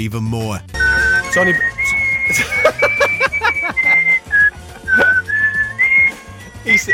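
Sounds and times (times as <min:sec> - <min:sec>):
speech: 0:00.0 - 0:04.2, 0:06.6 - 0:06.9
person whistling a bright bouncy tune: 0:00.8 - 0:06.9
faint chuckling: 0:02.3 - 0:05.1.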